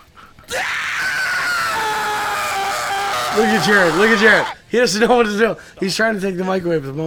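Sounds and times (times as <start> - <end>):
harsh metal-style vocal scream: 0.5 - 4.6
speech: 3.4 - 7.0.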